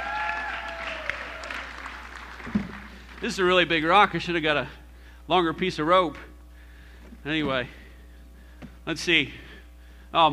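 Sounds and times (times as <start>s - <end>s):
audience applause: 0.0s - 3.5s
speech: 3.2s - 6.3s, 7.2s - 7.8s, 8.9s - 9.4s, 10.1s - 10.3s.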